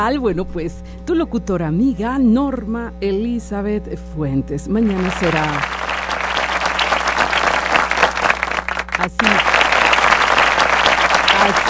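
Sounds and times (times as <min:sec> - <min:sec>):
speech: 0:00.0 - 0:05.8, 0:09.0 - 0:09.5
crowd applauding a national football team: 0:04.8 - 0:11.6.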